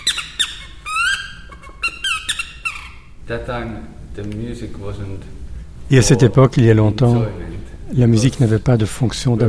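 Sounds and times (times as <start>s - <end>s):
birch-bark bird call lure squeaking: 0.0s - 3.1s
speech: 3.3s - 9.4s.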